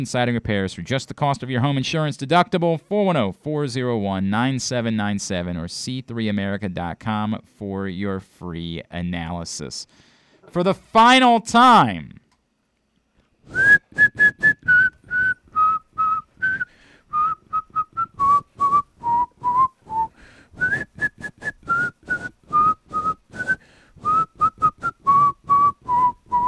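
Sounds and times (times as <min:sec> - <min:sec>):
speech: 0:00.0 - 0:12.2, 0:13.5 - 0:14.6
person whistling a tune: 0:13.5 - 0:26.4.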